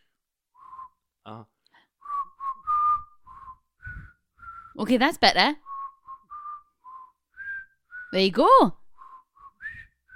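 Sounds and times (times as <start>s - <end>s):
person whistling a tune: 0.5s - 1.1s, 1.9s - 4.9s, 5.6s - 8.3s, 8.9s - 10.1s
speech: 1.2s - 1.6s, 4.8s - 5.6s, 8.1s - 8.8s.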